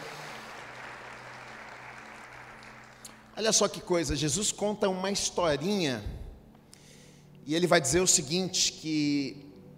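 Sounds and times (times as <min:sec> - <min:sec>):
audience applauding: 0:00.0 - 0:03.7
speech: 0:03.4 - 0:06.2, 0:07.5 - 0:09.5.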